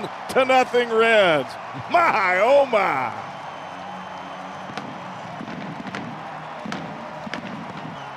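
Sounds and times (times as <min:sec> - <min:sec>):
speech: 0:00.0 - 0:03.3
stadium crowd roaring: 0:00.0 - 0:08.1
stadium fireworks bangs after a home run: 0:04.7 - 0:08.1.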